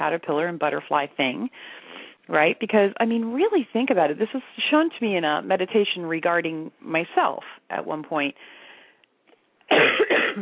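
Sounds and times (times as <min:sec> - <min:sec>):
speech: 0:00.0 - 0:08.6, 0:09.7 - 0:10.4
person coughing harshly: 0:09.7 - 0:10.4.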